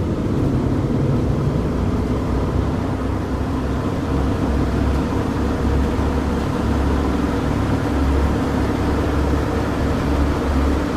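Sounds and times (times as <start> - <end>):
airplane engines roaring during takeoff heard from inside the cabin: 0.0 - 10.9.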